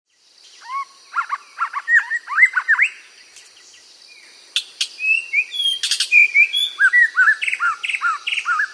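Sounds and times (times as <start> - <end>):
white-rumped shama song: 0.6 - 3.0, 4.9 - 8.7.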